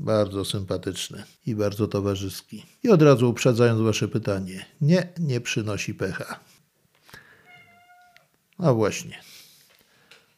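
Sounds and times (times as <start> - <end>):
speech: 0.1 - 6.5, 8.6 - 9.3
black cat meowing: 7.4 - 8.3.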